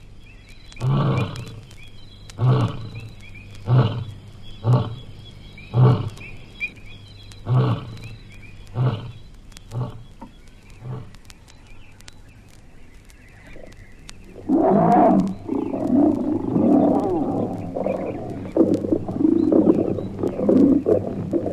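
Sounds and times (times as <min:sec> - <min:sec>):
faint chirping: 0:00.0 - 0:21.5
animal grunting: 0:00.8 - 0:01.7, 0:02.4 - 0:05.1, 0:05.7 - 0:06.2, 0:07.4 - 0:08.1, 0:08.8 - 0:10.0, 0:10.8 - 0:11.2, 0:14.4 - 0:21.5.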